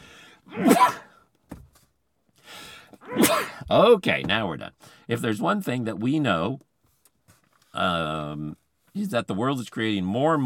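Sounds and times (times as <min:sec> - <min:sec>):
person sneezing: 0:00.5 - 0:01.2, 0:03.0 - 0:03.7
speech: 0:00.6 - 0:01.1, 0:03.2 - 0:06.7, 0:07.7 - 0:10.4.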